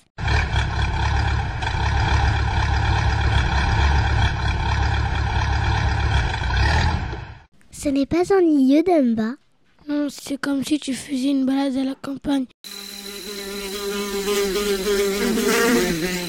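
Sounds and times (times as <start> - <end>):
tractor engine droning as it passes: 0.2 - 7.5
speech: 7.8 - 12.9, 14.3 - 16.2.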